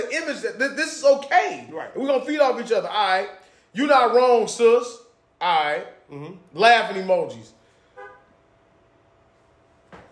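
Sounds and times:
speech: 0:00.1 - 0:07.6
car horn honks outside: 0:07.9 - 0:08.4.

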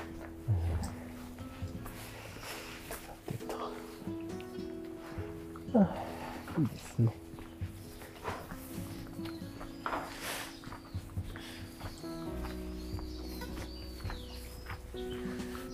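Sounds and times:
birds chirping and singing outdoors: 0:00.0 - 0:15.7
footsteps crunching: 0:00.0 - 0:15.7
speech: 0:05.7 - 0:07.2.

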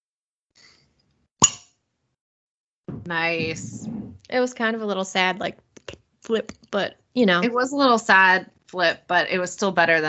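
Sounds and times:
cork popping out of a wine bottle: 0:01.4 - 0:01.8
speech: 0:03.0 - 0:10.0.

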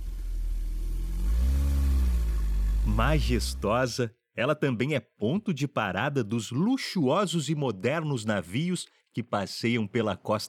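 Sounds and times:
car engine revving while boarding a ferry to Ilhabela in Brazil: 0:00.0 - 0:04.0
speech: 0:03.0 - 0:10.4.

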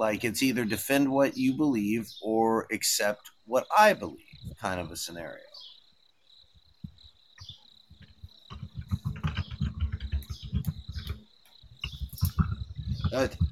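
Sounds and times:
speech: 0:00.0 - 0:05.7, 0:13.1 - 0:13.4
keyboard typing: 0:08.0 - 0:13.4.

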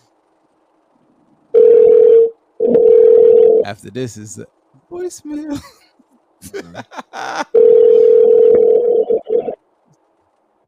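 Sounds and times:
telephone ringback tone of an outgoing call: 0:01.6 - 0:03.6, 0:07.6 - 0:09.6
speech: 0:03.7 - 0:05.8, 0:06.4 - 0:07.8
laughter: 0:06.4 - 0:07.6.

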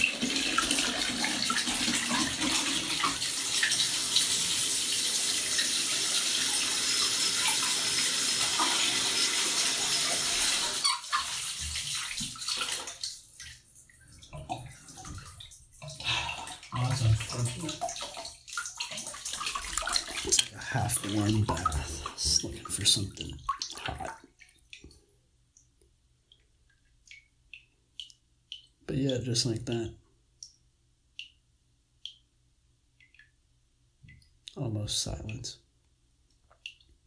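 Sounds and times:
cold water gushing from a tap into a bathtub: 0:00.0 - 0:25.0
faint drips and trickles of water: 0:00.0 - 0:31.4, 0:32.0 - 0:32.3, 0:32.9 - 0:33.4, 0:34.0 - 0:35.5, 0:36.3 - 0:37.0
speech: 0:29.1 - 0:30.0, 0:34.9 - 0:35.7.

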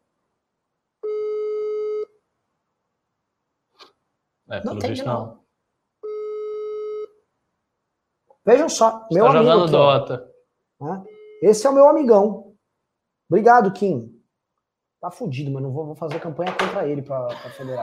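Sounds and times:
ringback tones from a phone line: 0:01.0 - 0:02.1, 0:06.0 - 0:07.1
speech: 0:04.5 - 0:05.4, 0:08.5 - 0:12.5, 0:13.3 - 0:14.2, 0:15.0 - 0:17.8
laughter: 0:09.2 - 0:10.2, 0:17.3 - 0:17.8.

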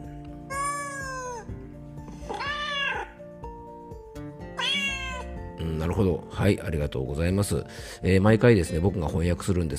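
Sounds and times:
cat meowing: 0:00.5 - 0:01.6, 0:02.3 - 0:03.3, 0:04.5 - 0:05.4
speech: 0:05.8 - 0:09.7.

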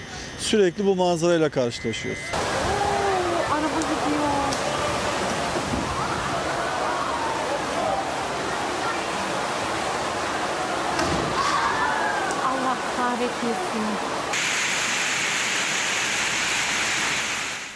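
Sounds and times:
speech: 0:00.4 - 0:02.4
floodwater rushing through the street: 0:02.3 - 0:17.7
faint voices shouting: 0:04.6 - 0:09.5, 0:10.3 - 0:12.6.

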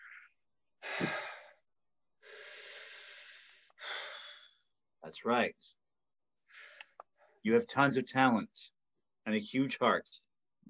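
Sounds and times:
faint slow deep breaths: 0:00.0 - 0:01.6, 0:02.2 - 0:04.8, 0:06.4 - 0:07.4
speech: 0:05.1 - 0:05.8, 0:07.4 - 0:10.6.

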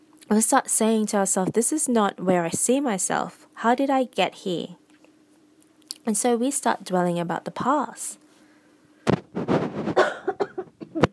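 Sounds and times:
speech: 0:00.3 - 0:04.8, 0:06.0 - 0:08.2
person coughing from a throat tickle: 0:10.0 - 0:11.1.

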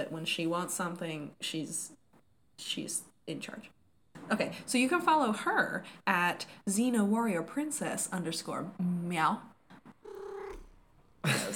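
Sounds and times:
speech: 0:00.0 - 0:02.0, 0:02.6 - 0:09.5
cat giving a drawn-out meow: 0:10.0 - 0:10.7.

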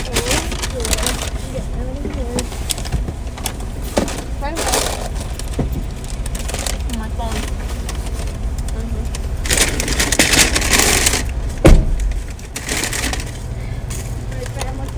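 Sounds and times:
voices: 0:00.0 - 0:10.0, 0:13.1 - 0:14.9
car engine idling: 0:00.0 - 0:14.9.

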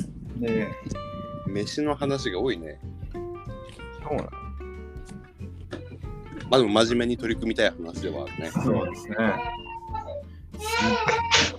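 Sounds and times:
speech: 0:00.4 - 0:02.9, 0:04.0 - 0:04.4, 0:06.5 - 0:09.6, 0:10.8 - 0:11.3
young child babbling and squealing: 0:08.6 - 0:11.5.

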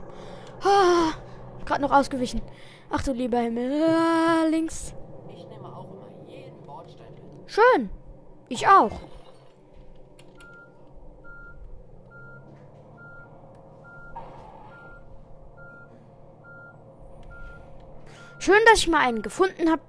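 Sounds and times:
heavy bus engine rumbling: 0:00.0 - 0:19.8
speech: 0:01.7 - 0:05.0, 0:07.5 - 0:09.1, 0:18.4 - 0:19.8
high electronic warning beep: 0:10.4 - 0:19.7.

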